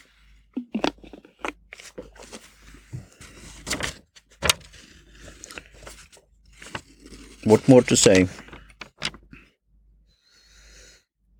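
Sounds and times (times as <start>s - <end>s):
sipping a drink: 0.6s - 2.2s
speech: 7.4s - 8.4s.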